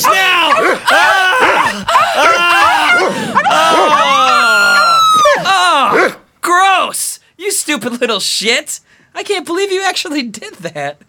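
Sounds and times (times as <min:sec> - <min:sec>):
women screaming high-pitched: 0:00.0 - 0:06.2
dogs barking, yipping and whining: 0:00.0 - 0:06.3
speech: 0:07.7 - 0:11.0.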